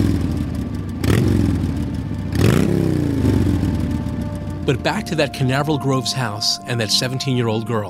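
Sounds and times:
motorcycle engine revving while being worked on: 0.0 - 6.0
speech: 4.7 - 7.8.

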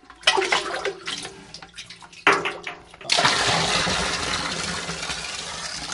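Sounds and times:
water being scooped out of a hole: 0.0 - 5.9.

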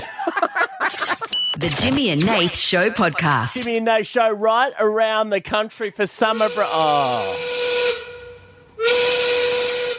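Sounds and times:
laughter: 0.0 - 1.4
speech: 1.6 - 7.6
steam whistle marking quitting time: 6.3 - 9.9.

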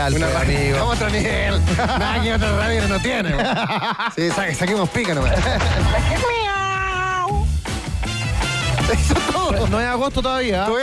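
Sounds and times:
speech: 0.0 - 6.6, 8.9 - 10.8
laughter: 0.2 - 6.4, 8.8 - 10.0
cat meowing: 6.2 - 7.5.

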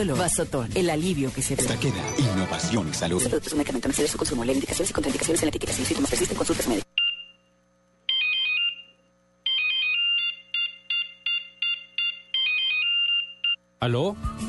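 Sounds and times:
speech: 0.0 - 6.9, 13.8 - 14.4
cell phone ringtone with bright electronic beeping melody: 8.1 - 13.6.

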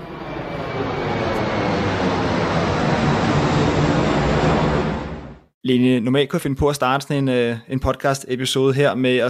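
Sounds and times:
airplane flying with loud broadband engine roar: 0.0 - 5.6
speech: 5.7 - 9.2.

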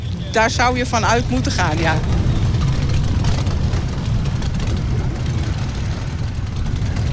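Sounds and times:
nearly 400 motorcycle engines idling before a group ride: 0.0 - 7.1
speech: 0.4 - 2.2.

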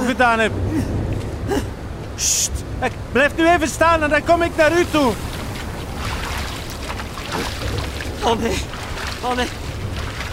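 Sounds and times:
speech: 0.1 - 5.3, 8.2 - 9.6
rowboat moving through water with sloshing and splashing: 4.4 - 10.3.

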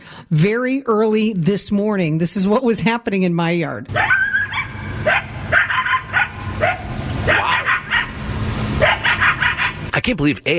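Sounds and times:
speech: 0.3 - 4.2, 10.1 - 10.5
coyotes yipping and howling in a backyard: 3.9 - 8.2, 8.8 - 9.8.

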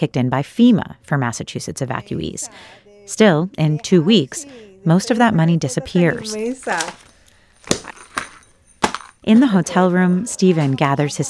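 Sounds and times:
speech: 0.0 - 7.9, 9.2 - 11.2
set of keys jangling: 5.9 - 10.8.

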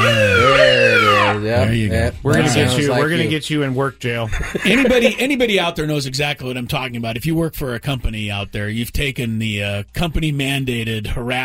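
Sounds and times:
loud siren wailing: 0.0 - 1.8
speech: 1.6 - 11.4
laughter: 4.2 - 5.4.

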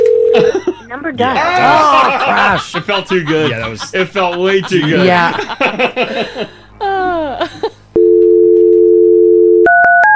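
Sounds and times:
steady telephone tone: 0.0 - 0.4, 8.0 - 10.0
speech: 0.4 - 7.6
people laughing: 0.4 - 7.9.

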